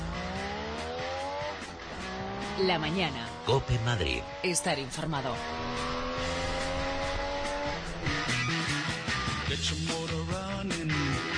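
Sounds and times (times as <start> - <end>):
car engine revving through several gear shifts: 0.0 - 11.3
speech: 2.6 - 5.8, 9.5 - 11.0.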